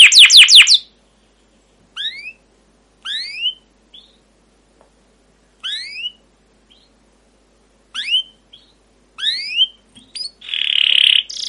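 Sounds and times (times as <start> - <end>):
caged canary chirping: 0.0 - 1.0, 1.9 - 4.4, 5.5 - 7.2, 7.8 - 11.4.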